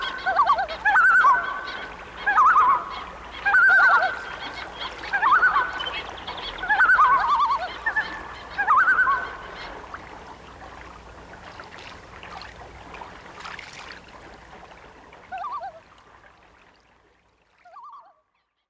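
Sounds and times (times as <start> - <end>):
loons giving tremolo calls on a lake: 0.0 - 10.0, 15.3 - 15.9.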